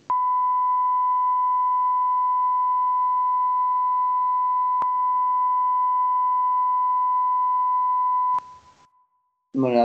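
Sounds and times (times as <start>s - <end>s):
steady loud bleep tone: 0.1s - 8.7s
person speaking: 9.6s - 9.8s.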